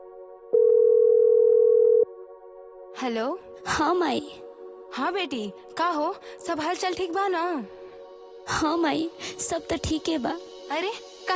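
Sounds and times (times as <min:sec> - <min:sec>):
telephone ringing tone while placing a call: 0:00.6 - 0:02.1
speech: 0:03.0 - 0:07.8, 0:08.4 - 0:11.3.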